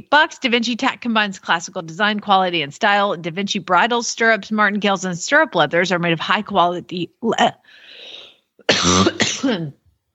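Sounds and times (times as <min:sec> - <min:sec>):
speech: 0:00.0 - 0:08.0, 0:08.7 - 0:09.8
person coughing and choking from allergies: 0:08.6 - 0:09.8.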